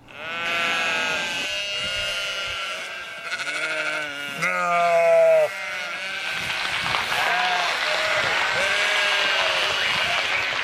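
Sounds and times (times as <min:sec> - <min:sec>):
crowd of sheep bleating: 0:00.1 - 0:10.5.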